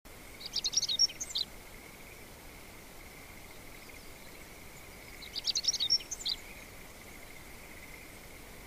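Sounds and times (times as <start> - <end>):
background noise: 0.1 - 8.6
bird song of high chirps and trills: 0.3 - 2.2, 3.4 - 8.2.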